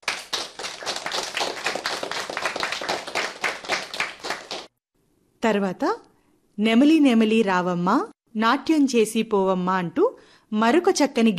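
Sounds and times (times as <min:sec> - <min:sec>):
audience clapping for singers at a school performance: 0:00.0 - 0:04.8
speech: 0:05.4 - 0:11.3.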